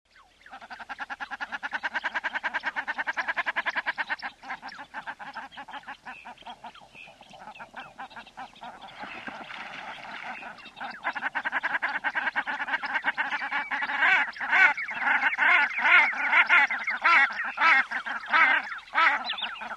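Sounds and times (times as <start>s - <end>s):
common shelduck calling: 0.5s - 6.7s, 10.2s - 19.7s.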